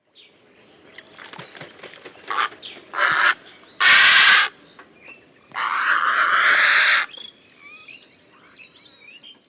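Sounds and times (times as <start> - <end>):
purple heron calling: 2.2 - 8.6.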